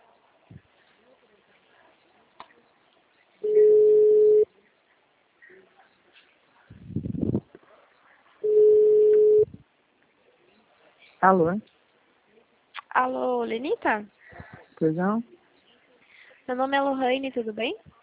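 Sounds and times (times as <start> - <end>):
telephone line tone while placing a call: 3.4 - 4.5, 8.4 - 9.5
speech: 11.2 - 11.7, 13.0 - 14.2, 14.8 - 15.4, 16.5 - 18.0.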